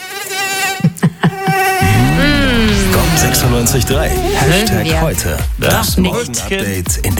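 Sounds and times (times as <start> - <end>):
mosquito whining: 1.4 - 5.2
low hum: 1.8 - 5.4
speech: 3.3 - 7.1.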